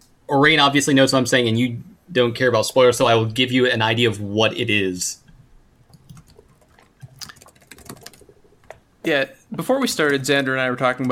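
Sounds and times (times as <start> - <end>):
speech: 0.3 - 5.2, 9.0 - 11.0
typing on a computer keyboard: 5.9 - 8.8.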